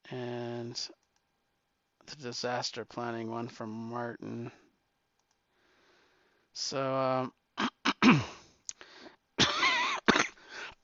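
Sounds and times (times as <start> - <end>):
speech: 0.1 - 1.0, 2.1 - 4.6, 6.6 - 7.4, 8.0 - 8.3
person clearing throat: 7.6 - 8.4, 9.4 - 10.8
person coughing harshly: 7.6 - 8.4, 9.4 - 10.8.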